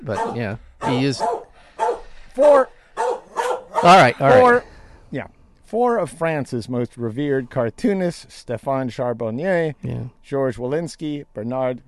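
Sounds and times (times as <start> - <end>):
speech: 0.0 - 1.4, 2.4 - 2.8, 3.8 - 11.8
dog barking: 0.0 - 2.1, 3.0 - 4.2.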